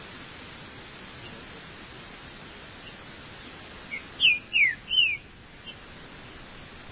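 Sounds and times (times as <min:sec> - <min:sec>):
green-winged saltator singing slurred downward whistles: 0:03.9 - 0:05.3.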